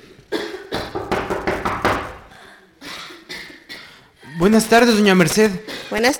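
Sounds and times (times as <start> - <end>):
sick girl coughing in a harsh hacking fit: 0.3 - 1.0, 2.8 - 4.0, 5.6 - 6.1
speech: 4.4 - 6.1.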